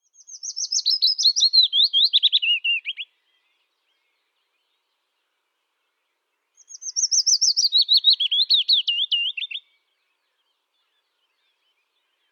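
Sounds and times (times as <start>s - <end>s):
Phylloscopus trochilus singing: 0.0s - 5.2s, 5.9s - 12.3s.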